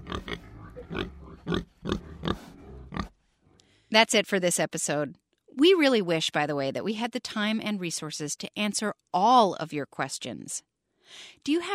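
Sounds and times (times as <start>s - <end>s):
pig grunting with short rough snorts: 0.0s - 3.2s
speech: 3.9s - 11.7s.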